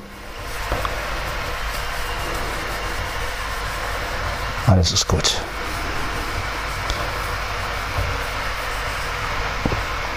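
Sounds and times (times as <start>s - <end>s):
electric kettle heating water: 0.0s - 10.1s
speech: 4.7s - 5.8s.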